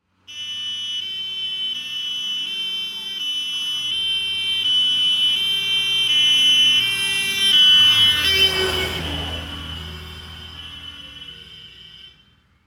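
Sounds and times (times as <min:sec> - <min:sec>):
German fire engine siren: 0:00.1 - 0:12.6.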